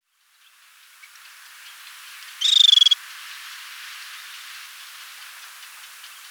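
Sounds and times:
faint background hiss: 0.0 - 6.3
fulvous babbler giving a buzzy pulsed trill: 2.4 - 3.0.

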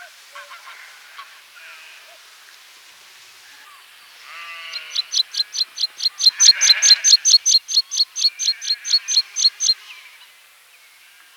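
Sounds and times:
meadow pipit singing: 4.7 - 9.8.

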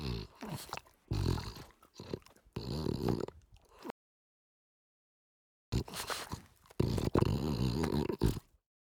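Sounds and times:
French bulldog snorting and snuffling: 0.0 - 3.9, 5.8 - 8.6.

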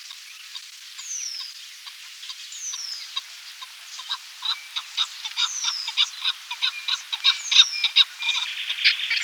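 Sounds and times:
chukar partridge calling with harsh clucking notes: 3.2 - 9.2.

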